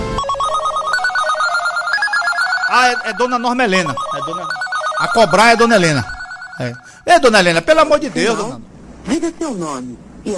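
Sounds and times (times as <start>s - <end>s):
electronic telephone ringing with an incoming call: 0.0s - 7.1s
speech: 2.8s - 10.3s.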